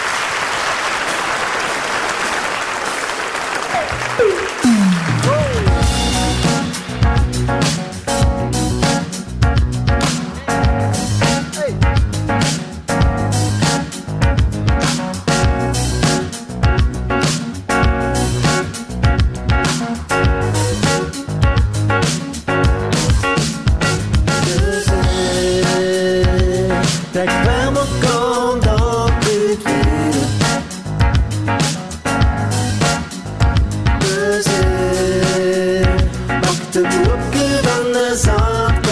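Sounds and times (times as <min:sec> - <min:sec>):
audience applause: 0:00.0 - 0:06.0
upbeat music with a steady beat: 0:03.7 - 0:38.9.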